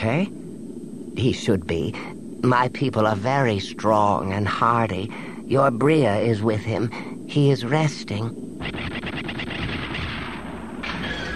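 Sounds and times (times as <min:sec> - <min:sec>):
speech: 0:00.0 - 0:00.4, 0:01.2 - 0:08.7
rapid gunfire burst: 0:08.6 - 0:11.0.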